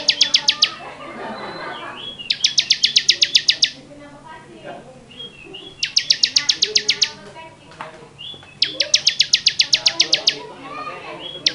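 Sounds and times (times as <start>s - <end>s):
bar-winged prinia singing: 0.0s - 4.0s, 5.0s - 11.5s
laughter: 0.5s - 2.3s.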